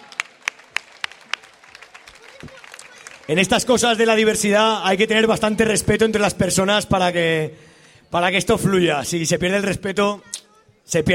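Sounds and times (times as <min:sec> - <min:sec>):
audience applause for a stage act: 0:00.0 - 0:04.5
speech: 0:03.3 - 0:11.1.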